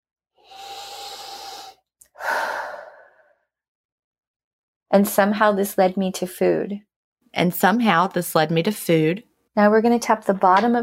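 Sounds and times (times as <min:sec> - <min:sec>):
deep breath in and out during a finger-tapping relaxation exercise: 0:00.4 - 0:03.5
speech: 0:04.9 - 0:10.8.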